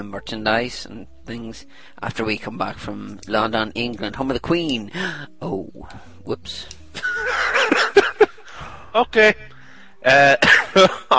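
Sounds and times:
speech: 0.0 - 7.9, 9.0 - 11.1
laughter: 7.0 - 8.6
loud rough throaty coughs: 10.2 - 11.1.

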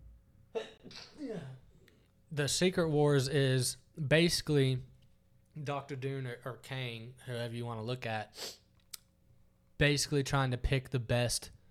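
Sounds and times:
person sneezing: 0.6 - 1.6
speech: 2.4 - 4.9, 5.6 - 8.6, 9.8 - 11.6.

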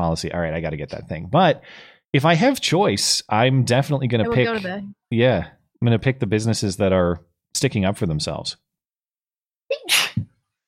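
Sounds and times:
speech: 0.0 - 8.6
person sneezing after a long windup: 9.8 - 10.3.

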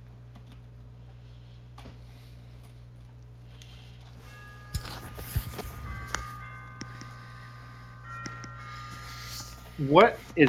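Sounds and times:
low steady hum: 0.0 - 10.4
wall clock chiming a soft tinkling melody: 3.6 - 10.4
speech: 9.8 - 10.4.

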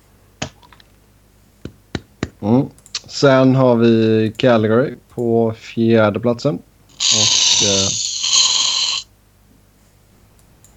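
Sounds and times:
speech: 2.4 - 8.0
whipped cream spray can spraying: 7.0 - 9.0.

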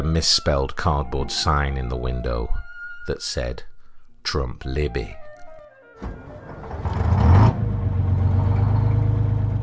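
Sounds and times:
speech: 0.0 - 5.2
classic yellow school bus engine starting, revving and idling: 6.0 - 9.6.

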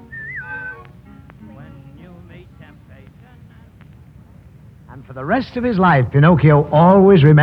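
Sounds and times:
person whistling a phrase: 0.0 - 0.9
speech: 5.0 - 7.4.

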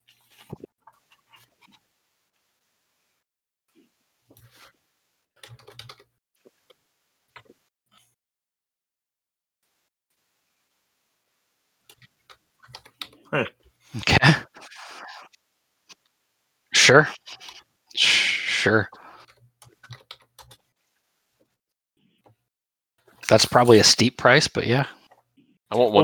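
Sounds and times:
typing on a computer keyboard: 5.4 - 6.1, 11.9 - 13.2, 19.3 - 20.6
speech: 13.3 - 14.4, 16.9 - 17.4, 18.6 - 19.0, 23.3 - 25.0, 25.7 - 26.0.

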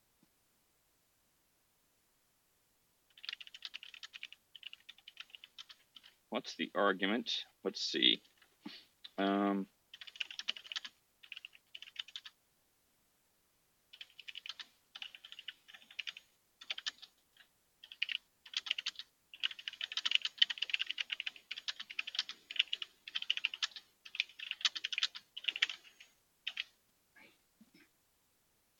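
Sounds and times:
typing on a computer keyboard: 3.1 - 6.2, 9.9 - 12.4, 13.9 - 26.8
speech: 6.3 - 9.7.

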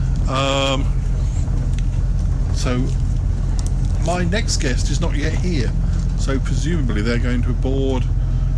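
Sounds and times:
bright tonal whine: 0.0 - 8.5
moving double-decker bus engine rumble heard from the top deck: 0.0 - 8.5
speech: 0.3 - 1.0, 2.6 - 3.0, 4.0 - 8.2.

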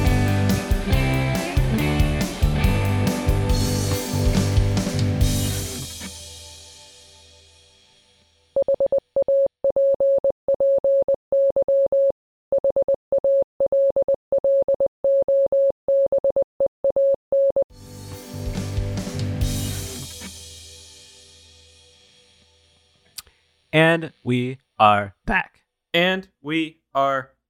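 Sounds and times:
music: 0.0 - 8.6, 17.7 - 23.7
steady single-pitch Morse code tone: 8.6 - 17.7
speech: 23.8 - 27.4.

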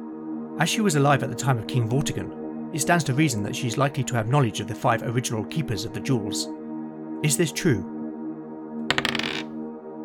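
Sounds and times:
speech: 0.6 - 6.6, 7.2 - 8.0
dice rattling and tumbling: 8.9 - 9.5.

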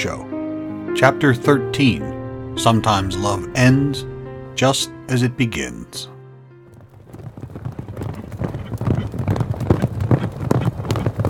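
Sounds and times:
speech: 0.0 - 0.3, 1.0 - 6.1
horses galloping through a forest: 6.6 - 11.2.

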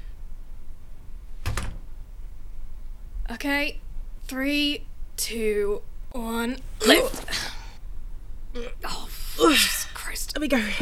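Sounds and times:
low steady room hum: 0.0 - 10.8
door shutting: 1.4 - 1.9
speech: 3.3 - 7.5, 8.5 - 10.8.

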